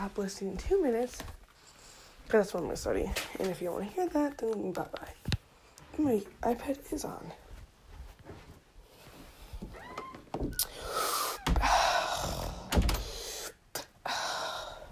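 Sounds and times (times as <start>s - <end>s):
speech: 0.0s - 1.4s, 2.3s - 5.3s, 6.0s - 7.4s
deep breaths taken before a study session: 1.5s - 2.3s, 10.6s - 14.9s.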